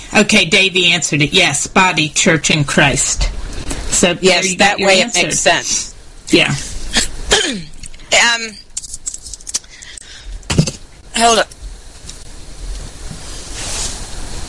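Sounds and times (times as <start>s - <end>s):
faint steady hiss: 0.0s - 14.4s
speech: 0.1s - 8.6s, 11.2s - 11.5s
person coughing: 6.9s - 7.8s.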